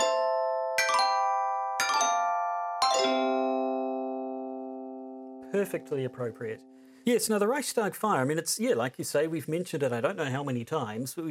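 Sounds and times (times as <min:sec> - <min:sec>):
short chime jingle of bright bell-like notes: 0:00.0 - 0:07.3
speech: 0:05.5 - 0:11.2.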